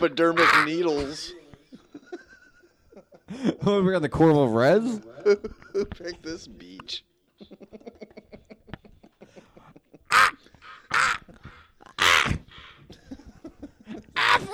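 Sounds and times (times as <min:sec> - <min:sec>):
speech: 0:00.0 - 0:01.4, 0:03.3 - 0:07.5
crows cawing on a beach: 0:00.2 - 0:01.2, 0:10.1 - 0:12.8, 0:14.2 - 0:14.5
laughter: 0:00.6 - 0:03.8, 0:04.7 - 0:06.6, 0:07.4 - 0:14.5.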